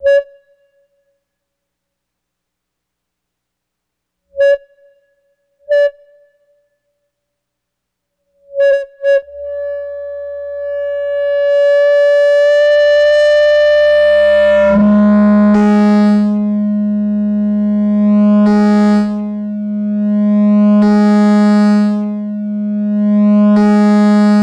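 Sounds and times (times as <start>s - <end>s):
audio feedback: 8.5s - 24.4s
electronic beeps and boops: 9.1s - 24.4s.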